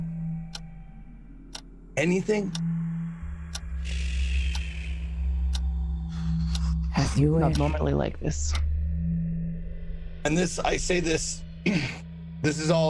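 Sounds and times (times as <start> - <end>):
clock ticking: 0.0 - 0.8, 1.5 - 2.7, 3.5 - 4.8, 5.5 - 8.6
low hum: 0.0 - 12.8
speech: 2.0 - 2.7, 7.2 - 8.7, 10.2 - 12.8.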